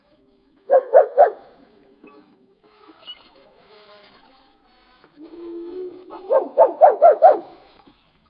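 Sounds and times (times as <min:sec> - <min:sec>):
raccoons making sounds in an urban setting: 0:00.7 - 0:02.2, 0:05.3 - 0:07.6.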